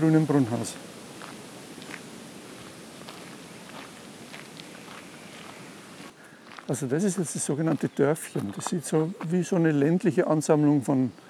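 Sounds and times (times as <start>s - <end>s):
speech: 0.0s - 1.0s, 6.7s - 11.2s
constant loud wash of rushing water or wind noise: 0.0s - 6.1s
soft footsteps on a canal path: 1.1s - 10.0s.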